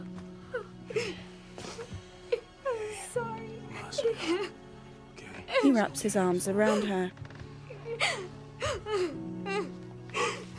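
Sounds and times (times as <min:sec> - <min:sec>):
woman sobbing over a body: 0:00.5 - 0:04.6, 0:07.7 - 0:10.5
speech: 0:04.0 - 0:04.6, 0:05.6 - 0:07.2.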